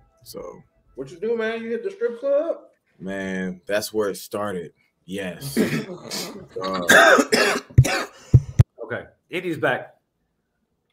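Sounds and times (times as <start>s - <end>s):
speech: 0.2s - 8.0s, 8.9s - 10.0s
person coughing hard: 5.4s - 8.2s
sharp low thump of a person knocking against and breaking a microphone: 7.8s - 8.6s.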